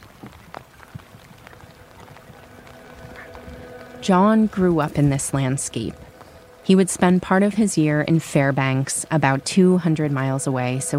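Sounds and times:
footsteps: 0:00.0 - 0:06.8
cold rain falling outdoors: 0:00.0 - 0:10.9
speech: 0:04.0 - 0:06.1, 0:06.7 - 0:10.9.

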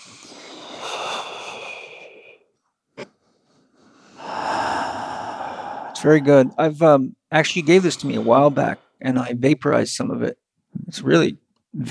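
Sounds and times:
long deep inhalations: 0:00.0 - 0:02.5, 0:03.3 - 0:09.4
speech: 0:06.0 - 0:11.8.

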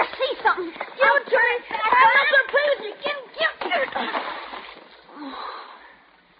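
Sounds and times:
churning, sloshing water: 0:00.0 - 0:05.2
flashlight dropped into water: 0:03.6 - 0:05.0.

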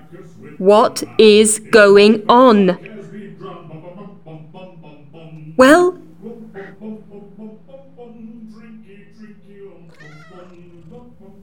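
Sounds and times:
speech: 0:00.1 - 0:02.9, 0:05.6 - 0:06.0
cat meowing: 0:09.9 - 0:11.0.

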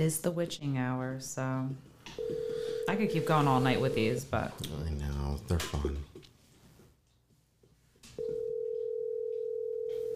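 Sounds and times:
speech: 0:00.0 - 0:06.1
faint noise: 0:00.0 - 0:10.1
steady electronic telephone line tone of an unanswered call: 0:02.2 - 0:04.2, 0:08.2 - 0:10.1.

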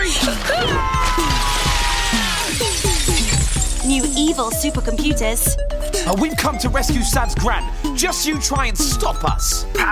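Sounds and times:
glass shattering crash: 0:00.2 - 0:04.7
glass shards tinkling and falling: 0:01.1 - 0:04.8
speech: 0:04.4 - 0:09.9.

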